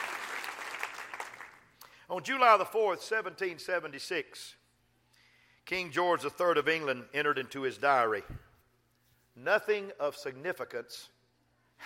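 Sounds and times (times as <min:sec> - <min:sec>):
audience clapping: 0:00.0 - 0:01.8
speech: 0:02.1 - 0:04.6, 0:05.7 - 0:08.4, 0:09.4 - 0:11.2.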